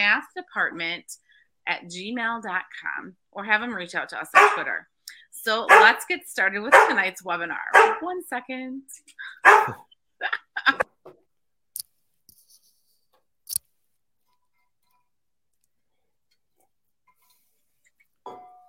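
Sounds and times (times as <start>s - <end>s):
speech: 0.0s - 10.9s
dogs barking for their dinner: 4.4s - 4.8s, 5.7s - 6.1s, 6.7s - 7.0s, 7.7s - 8.0s, 9.4s - 9.8s.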